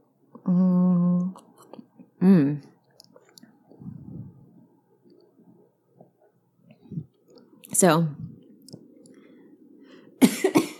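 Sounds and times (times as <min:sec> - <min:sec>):
sustained hummed vocal tone: 0:00.4 - 0:01.4, 0:03.8 - 0:04.5
speech: 0:00.5 - 0:00.8, 0:02.2 - 0:02.7, 0:07.8 - 0:08.2.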